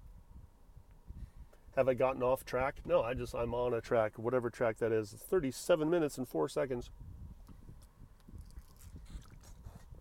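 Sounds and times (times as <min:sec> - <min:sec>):
speech: 0:01.8 - 0:07.1
soft lip smacks: 0:08.2 - 0:09.9
person drinking water with wet gulps and swallows: 0:08.3 - 0:09.9.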